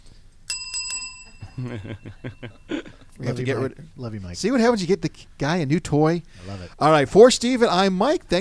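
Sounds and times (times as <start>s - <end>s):
bicycle bell ringing: 0.5s - 2.8s
speech: 1.6s - 8.4s.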